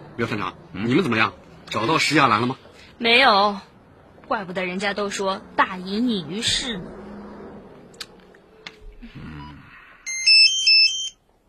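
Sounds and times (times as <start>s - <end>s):
speech: 0.2s - 3.7s, 4.3s - 7.0s
mobile phone ringing with electronic ringtone melody: 10.1s - 11.2s.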